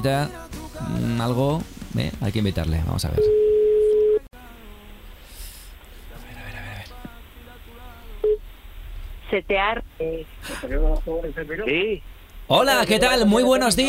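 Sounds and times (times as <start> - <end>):
speech: 0.0 - 3.4, 9.4 - 13.8
telephone ringing tone during outgoing call: 3.2 - 4.2.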